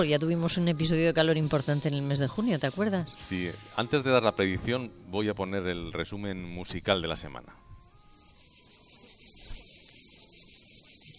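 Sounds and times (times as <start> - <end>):
speech: 0.0 - 7.7
shrill buzzing chorus of cicadas: 7.7 - 11.1.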